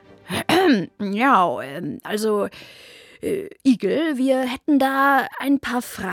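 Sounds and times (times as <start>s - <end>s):
person clearing throat: 0.3s - 0.9s
speech: 0.7s - 6.1s.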